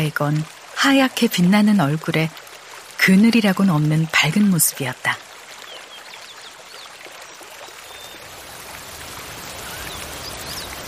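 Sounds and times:
speech: 0.0s - 2.4s, 3.1s - 5.2s
sudden rain shower: 0.0s - 10.8s
faint bird chirps: 5.6s - 8.2s, 9.4s - 10.8s.

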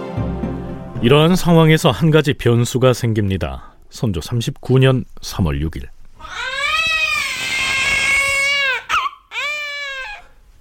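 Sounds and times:
speech: 1.0s - 6.5s
newborn baby boy crying: 6.2s - 10.4s.

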